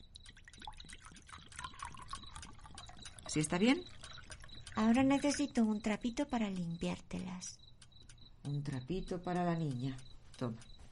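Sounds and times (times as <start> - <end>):
water pouring and splashing in a kitchen to wash hands: 0.0 - 5.3
quick bubbly glugs of water: 0.0 - 5.6
small water drips: 0.0 - 10.1
speech: 3.3 - 4.0, 4.8 - 7.6, 8.4 - 10.7.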